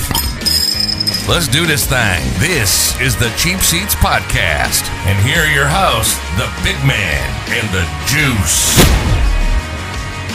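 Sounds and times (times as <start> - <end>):
glass beer bottles clinking: 0.0 - 1.3
speech: 1.3 - 9.3.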